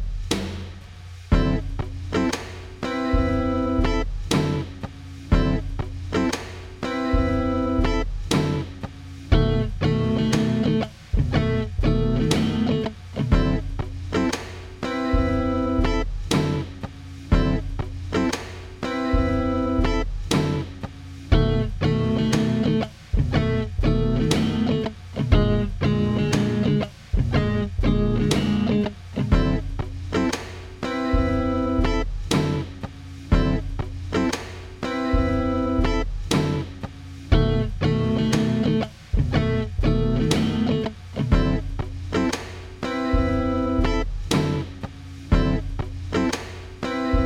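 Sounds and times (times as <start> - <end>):
jazz guitar: 0.2 - 47.2.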